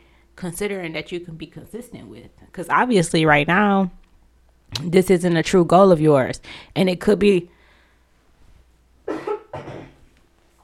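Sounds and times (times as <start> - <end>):
speech: 0.4 - 4.0, 4.7 - 7.6
person coughing: 9.1 - 10.0.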